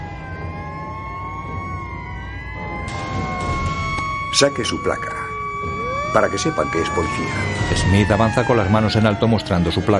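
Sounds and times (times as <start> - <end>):
several police patrol car sirens wailing: 0.0 - 9.9
speech: 4.4 - 5.2, 6.1 - 9.9.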